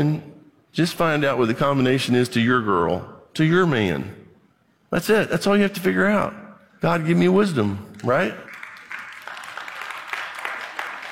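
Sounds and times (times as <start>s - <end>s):
speech: 0.0s - 4.2s, 4.9s - 8.4s
audience clapping weakly: 7.9s - 11.1s.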